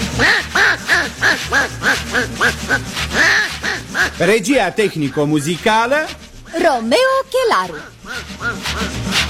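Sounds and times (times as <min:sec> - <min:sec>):
electric toy train horn quacking like a duck: 0:00.2 - 0:04.3, 0:06.5 - 0:09.1
speech: 0:04.2 - 0:07.9.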